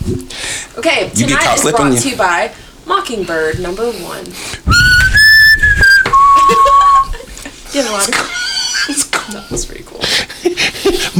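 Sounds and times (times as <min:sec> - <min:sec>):
speech: 0:00.1 - 0:04.8, 0:07.7 - 0:11.1
person whistling a birdcall imitation: 0:04.7 - 0:07.2
laughter: 0:06.1 - 0:09.6.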